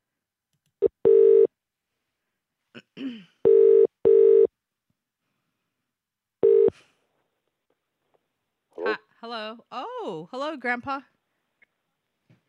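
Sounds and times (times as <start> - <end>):
telephone ringing tone heard through the line: 1.0 - 1.5, 3.5 - 4.5, 6.4 - 6.7
speech: 10.3 - 11.2.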